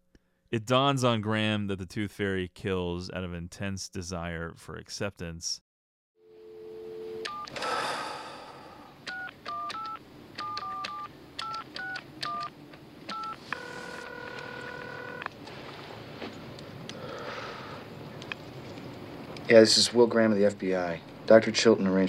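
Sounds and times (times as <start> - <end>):
speech: 0.5 - 5.6, 19.5 - 22.0
longer steady telephone tone: 6.2 - 9.0
touch-tone phone keypad beeps dialing a number: 7.2 - 7.5, 9.1 - 12.5, 13.1 - 15.2.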